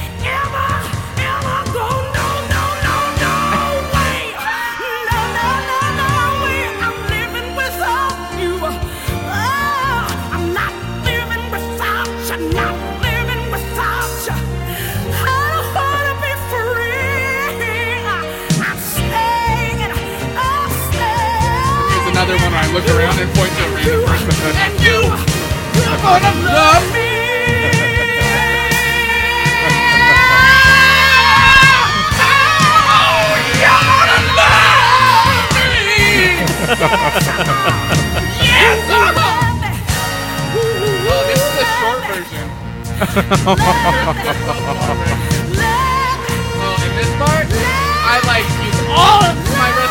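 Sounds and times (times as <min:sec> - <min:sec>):
live music: 0:00.0 - 0:49.8
laughter: 0:02.8 - 0:05.6, 0:21.8 - 0:39.8, 0:40.6 - 0:46.1
crowd screaming and cheering: 0:22.8 - 0:41.8
speech: 0:43.3 - 0:45.0.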